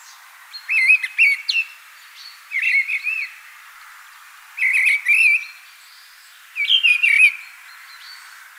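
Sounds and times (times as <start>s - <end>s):
mistle thrush song: 0.0s - 8.4s.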